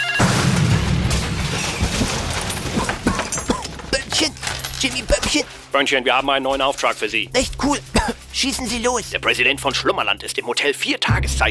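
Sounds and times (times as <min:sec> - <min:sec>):
explosive charge detonating as a burglar-alarm booby trap: 0:00.2 - 0:04.0
speech: 0:04.8 - 0:11.4.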